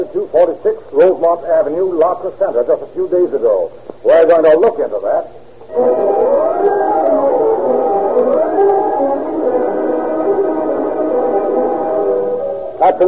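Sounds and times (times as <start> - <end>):
speech: 0.0 - 6.2
police car siren wailing: 5.7 - 12.9.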